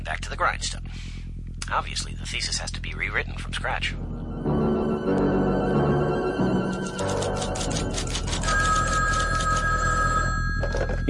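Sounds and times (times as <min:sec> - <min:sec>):
speech: 0:00.0 - 0:05.5, 0:10.7 - 0:11.0
steady music: 0:03.8 - 0:09.8
old-style telephone bell ringing in a rapid metallic trill: 0:06.9 - 0:11.0.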